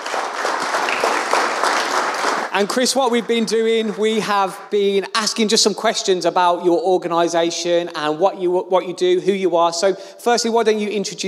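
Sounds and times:
audience applause: 0.0s - 4.8s
speech: 2.6s - 11.2s.

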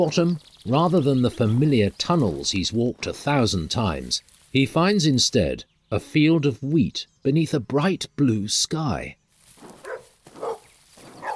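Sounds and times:
speech: 0.0s - 9.2s
dog barking: 9.8s - 11.3s.

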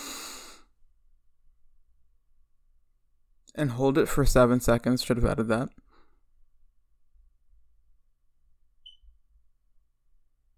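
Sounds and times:
deep inhale from the stomach during a stress-relief breathing exercise: 0.0s - 0.7s
speech: 3.6s - 5.8s.

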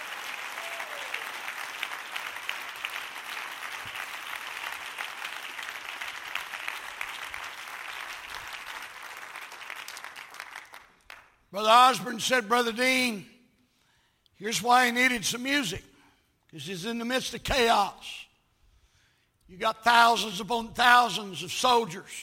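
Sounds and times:
large crowd clapping in a house of worship: 0.0s - 11.5s
speech: 11.6s - 13.3s, 14.4s - 15.9s, 16.5s - 18.3s, 19.5s - 22.2s.

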